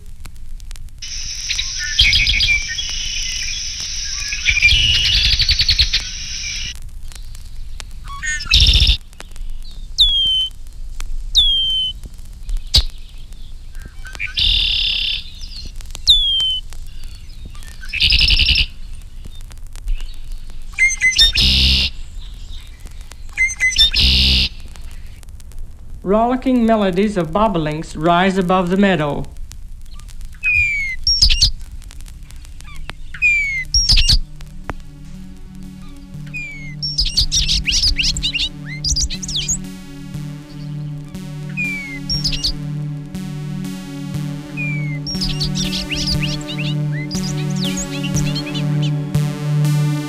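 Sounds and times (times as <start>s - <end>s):
steady outdoor hum: 0.8s - 18.0s, 18.7s - 50.0s
red-winged blackbird calling: 1.0s - 6.7s, 8.0s - 9.0s, 9.6s - 10.5s, 11.4s - 12.0s, 12.6s - 19.3s, 20.0s - 25.2s, 29.9s - 31.6s, 32.2s - 49.0s
buzzy trill: 1.0s - 6.8s, 20.7s - 22.0s, 23.4s - 24.6s, 30.5s - 50.0s
speech: 26.1s - 29.4s.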